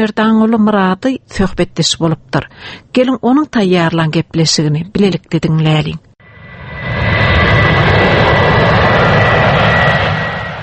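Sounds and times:
speech: 0.0s - 6.1s
airplane jet engine roar: 6.2s - 10.6s.

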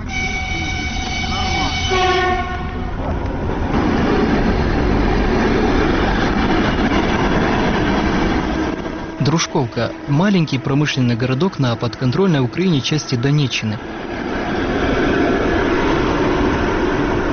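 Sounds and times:
electric commuter train horn: 0.0s - 3.0s, 8.4s - 11.3s
electric commuter train rumbling and rattling departing from a station track: 0.0s - 17.3s
speech: 9.4s - 14.1s.

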